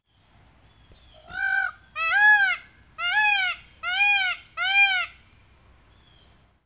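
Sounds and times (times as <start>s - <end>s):
Indian peafowl calling: 1.2s - 5.2s.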